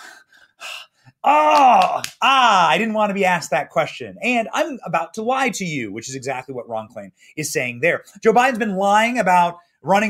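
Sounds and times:
voice imitating a heavy breathing gasp: 0.0s - 1.3s
speech: 1.3s - 10.0s.

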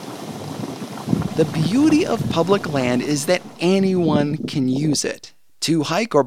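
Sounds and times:
boiling hot spring pools bubbling and gurgling: 1.0s - 5.3s
speech: 1.4s - 6.2s.

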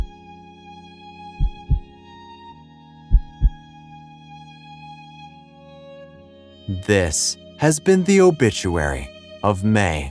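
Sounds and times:
slow heartbeat thumping: 1.4s - 1.8s, 3.1s - 3.6s
speech: 6.7s - 10.0s.

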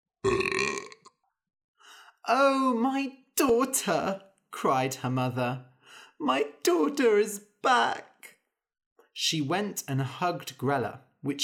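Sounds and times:
loud long burp from a young dragon after eating: 0.2s - 1.1s
speech: 2.3s - 8.1s, 9.2s - 11.4s.

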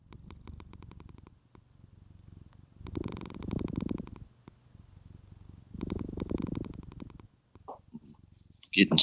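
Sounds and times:
cat purring in a low steady pulsing rumble: 0.0s - 9.0s
speech: 8.8s - 9.0s.

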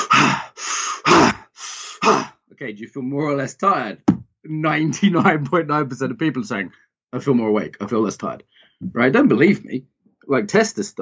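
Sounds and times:
quick forceful chest breaths in and out: 0.0s - 2.2s
speech: 2.6s - 10.9s.

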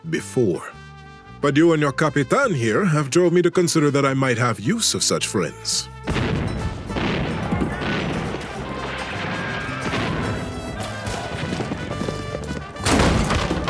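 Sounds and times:
speech: 0.0s - 0.8s, 1.4s - 6.7s
heavy front doors of a mansion crashing inward: 6.1s - 11.9s, 12.7s - 13.6s
loud dense clattering and banging impacts: 6.1s - 13.6s.

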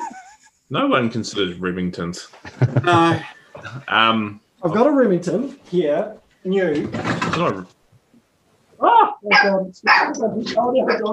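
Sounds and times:
laughter: 0.0s - 0.6s, 2.4s - 3.9s
speech: 0.7s - 7.8s, 9.2s - 11.1s
dogs barking: 9.3s - 10.2s.

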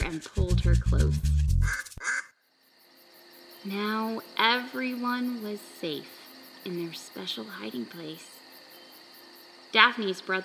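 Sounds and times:
speech: 0.1s - 2.3s, 3.6s - 8.4s, 9.7s - 10.4s
duck quacking with harsh nasal calls: 1.6s - 2.4s.

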